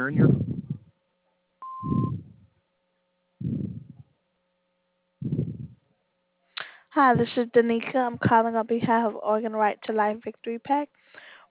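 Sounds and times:
speech: 0.0 - 0.4, 7.0 - 11.4
faint hum: 0.0 - 11.4
low thumps: 0.1 - 0.9, 1.8 - 2.6, 3.4 - 4.0, 5.2 - 5.9
electronic answering machine beep: 1.6 - 2.2.

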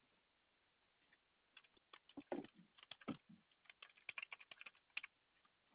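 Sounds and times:
computer keyboard typing: 1.5 - 5.1.

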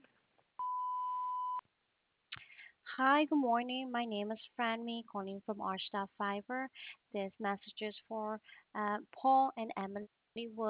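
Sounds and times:
electronic voicemail beep: 0.6 - 1.6
speech: 3.0 - 10.6.

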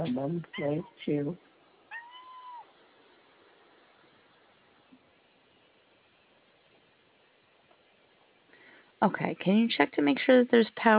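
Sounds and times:
speech: 0.0 - 1.5, 9.0 - 10.9
steady low hiss of noise: 0.0 - 10.9
cat meowing: 0.5 - 1.0, 1.9 - 2.8.

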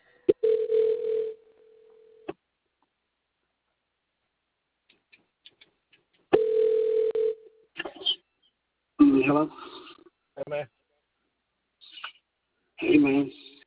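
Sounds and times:
telephone dial tone: 0.3 - 1.4, 6.4 - 7.4
speech: 9.3 - 9.7, 10.5 - 10.8, 12.8 - 13.4.

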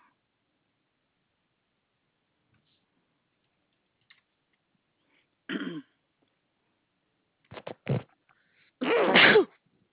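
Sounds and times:
throat clearing: 5.5 - 6.0
loud sneeze: 8.8 - 9.6.

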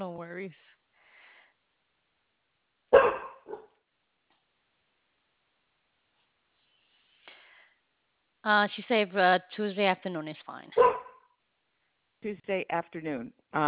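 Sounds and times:
speech: 0.0 - 0.8, 8.4 - 11.0, 12.2 - 13.6
dogs barking: 2.9 - 3.8, 10.8 - 11.3
fainter higher dog yips: 3.0 - 3.6, 10.8 - 11.3.

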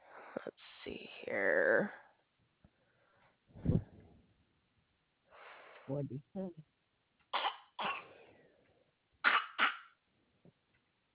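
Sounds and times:
speech: 6.0 - 6.8
baby giving short sharp little coughs: 7.3 - 8.1, 9.2 - 10.0.

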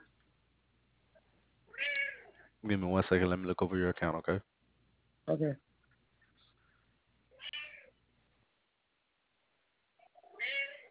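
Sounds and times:
cat meowing: 1.7 - 2.3, 7.3 - 8.0, 10.1 - 10.8
speech: 2.6 - 4.5, 5.3 - 5.7.

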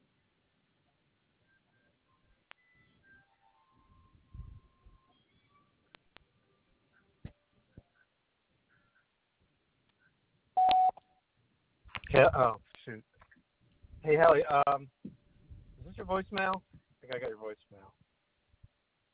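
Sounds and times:
electronic telephone keypad tones as a phone number is dialed: 10.6 - 11.0
speech: 12.1 - 13.1, 14.0 - 15.2, 16.0 - 18.0.

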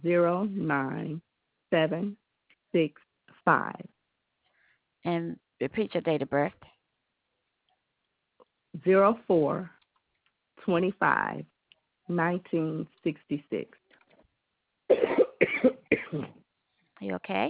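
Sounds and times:
speech: 0.0 - 3.9, 5.0 - 6.7, 8.8 - 9.8, 10.6 - 11.5, 12.1 - 13.8, 16.1 - 16.4, 17.0 - 17.4
person coughing a morning cough: 14.9 - 16.3.

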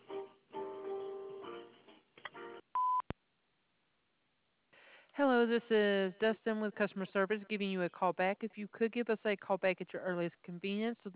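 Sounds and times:
voicemail answering machine electronic beep: 2.8 - 3.0
speech: 5.2 - 11.1.

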